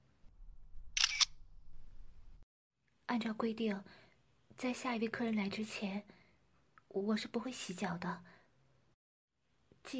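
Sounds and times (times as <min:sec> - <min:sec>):
camera shutter click taking a photo: 0:01.0 - 0:01.4
speech: 0:03.1 - 0:04.0, 0:04.6 - 0:06.2, 0:06.9 - 0:08.4.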